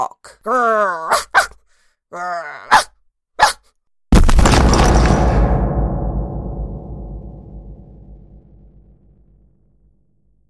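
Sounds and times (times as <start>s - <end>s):
dog barking: 1.1s - 1.6s, 2.7s - 3.7s
loud crashing rumble: 4.1s - 9.3s.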